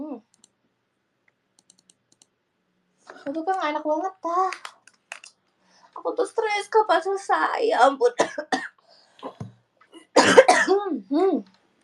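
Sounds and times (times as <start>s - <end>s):
speech: 3.2s - 4.7s, 6.0s - 8.6s, 10.7s - 11.5s
person with a persistent months-long cough coughing: 8.2s - 8.8s, 10.0s - 10.9s.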